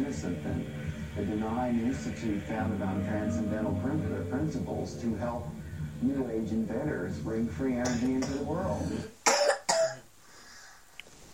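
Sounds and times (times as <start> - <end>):
speech: 0.1 - 9.1
harsh rasping cough: 7.8 - 10.1.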